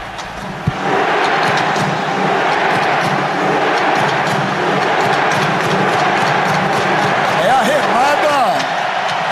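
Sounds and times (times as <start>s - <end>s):
football fans' rhythmic rowing chant in a large stadium crowd: 0.7s - 9.2s.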